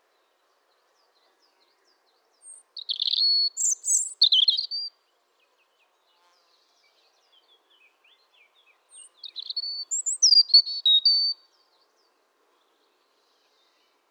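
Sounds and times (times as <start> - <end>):
European robin singing thin high warbling notes: 2.8 - 4.9, 9.2 - 11.4.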